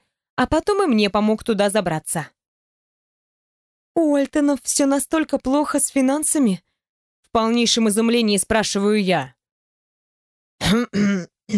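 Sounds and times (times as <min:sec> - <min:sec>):
speech: 0:00.4 - 0:02.4, 0:04.0 - 0:06.7, 0:07.3 - 0:09.4, 0:10.6 - 0:11.5
man coughing: 0:10.6 - 0:11.5.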